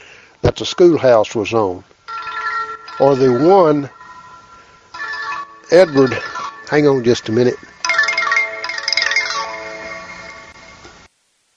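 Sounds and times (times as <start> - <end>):
speech: 0.6 - 1.9, 3.0 - 4.0, 5.7 - 7.8
mobile phone ringtone with chiming electronic melody: 2.1 - 10.8.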